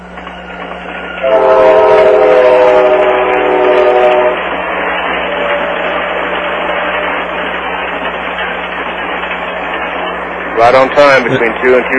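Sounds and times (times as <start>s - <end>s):
passenger train cars rumbling and clattering past: 0.0s - 11.9s
passenger train horn sounding a long chord: 1.1s - 4.6s
speech: 1.2s - 1.4s, 10.6s - 11.9s.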